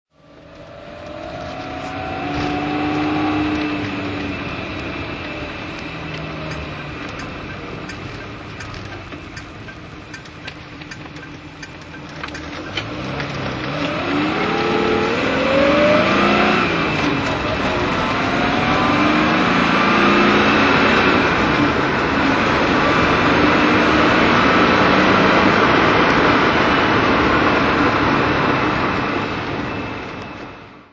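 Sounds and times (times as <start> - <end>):
Jaguar E-Type V12 engine driving with manual gearbox: 0.1 - 30.9.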